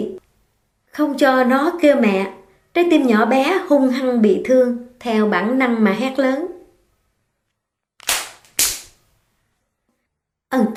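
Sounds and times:
speech: 1.0 - 6.5, 10.5 - 10.7
hands slapping a face: 8.0 - 9.0.

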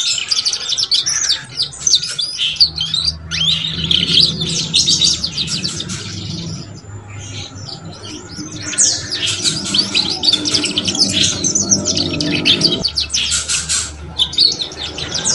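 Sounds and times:
Belgian canary song: 0.0 - 15.3
steady low hum: 2.5 - 13.3.

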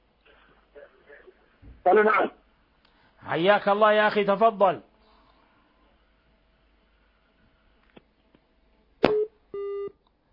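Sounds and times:
speech: 1.8 - 2.4, 3.3 - 4.9
telephone busy tone beeps after caller disconnected: 9.1 - 9.9.

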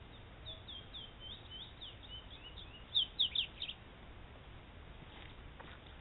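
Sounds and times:
double-collared seedeater song: 0.0 - 3.8.

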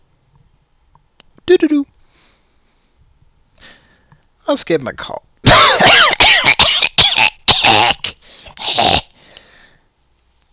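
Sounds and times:
speech: 1.5 - 2.0, 4.5 - 6.1
person coughing: 5.4 - 9.2.

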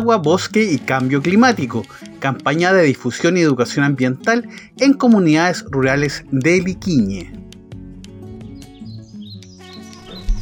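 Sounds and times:
speech: 0.0 - 7.4
thorn-tailed rayadito chirping and trilling: 8.4 - 10.4.

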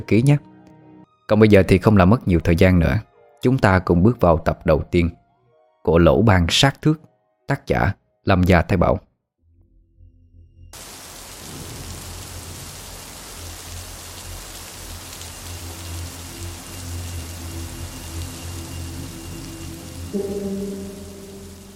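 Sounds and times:
speech: 0.0 - 0.5, 1.3 - 5.2, 5.8 - 9.1
steady rain on a late-September afternoon in Rạch Giá: 10.8 - 21.7.

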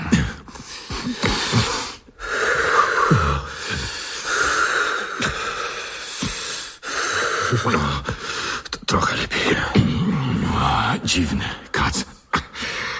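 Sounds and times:
person breathing heavily to fight off nausea: 0.0 - 8.7, 12.4 - 12.9
speech: 7.5 - 8.2, 8.9 - 10.2, 11.0 - 12.1.

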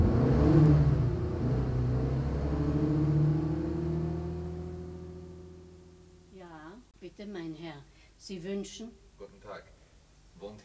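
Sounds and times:
car engine pulling away on a Paris street: 0.0 - 6.3
speech: 7.2 - 9.7, 10.4 - 10.6.

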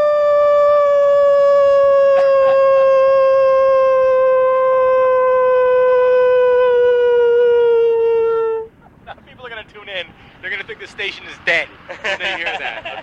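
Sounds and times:
person sitting cross-legged howling like a wolf in Howell New Jersey: 0.2 - 8.7
laughter: 2.1 - 3.4, 8.8 - 9.6, 11.8 - 13.0.

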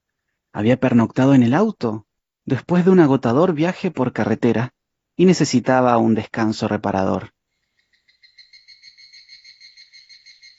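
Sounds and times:
speech: 0.6 - 7.3
cicada singing in late summer near a small village: 7.6 - 10.5.

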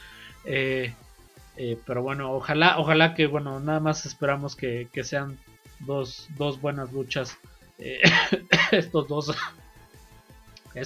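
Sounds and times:
speech: 0.4 - 1.0, 1.6 - 9.6
person coughing on air: 7.9 - 9.6.

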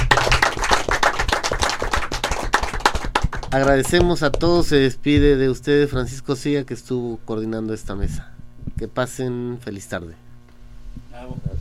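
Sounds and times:
audience applause at a World Bee Day event: 0.0 - 4.3
speech: 3.5 - 10.2, 11.2 - 11.5.

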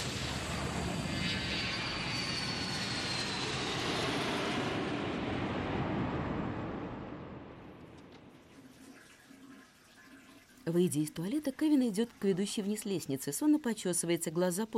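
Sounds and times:
airplane taking off: 0.0 - 8.5
speech: 10.7 - 14.7.

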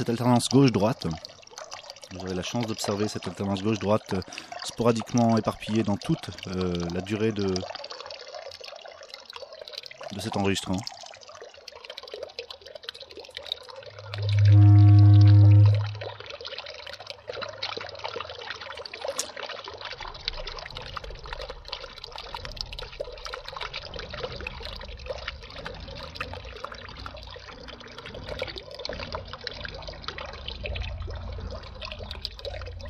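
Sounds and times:
speech: 0.0 - 1.3, 2.1 - 7.8, 10.1 - 11.0
water flowing in a canal in Toulouse, France: 0.0 - 32.8
loud low rumble: 14.0 - 16.2.

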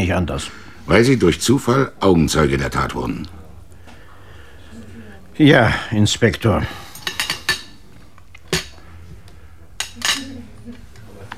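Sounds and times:
speech: 0.1 - 3.4, 5.4 - 6.8
crockery and cutlery clinking as a plate is cleared from a dinner table: 6.7 - 9.0, 9.8 - 11.3.

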